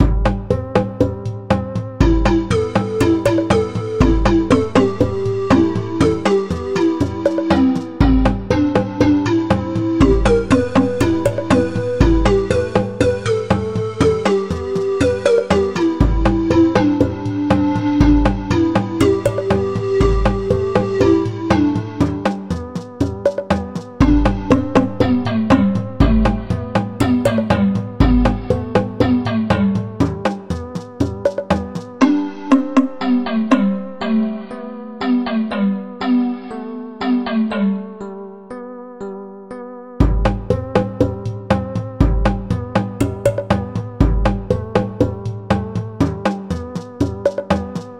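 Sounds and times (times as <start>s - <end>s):
music theme: 0.0s - 47.9s.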